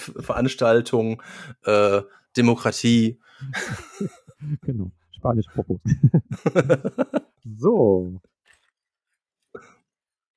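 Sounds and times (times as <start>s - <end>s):
speech: 0.1s - 8.3s
laughter: 3.4s - 4.8s, 5.6s - 7.4s
plastic rustling and crinkling: 8.3s - 9.5s.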